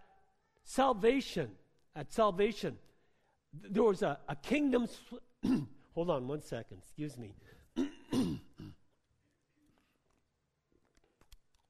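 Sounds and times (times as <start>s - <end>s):
speech: 0.8s - 2.9s, 3.5s - 8.4s
throat clearing: 5.4s - 5.8s, 7.8s - 8.9s.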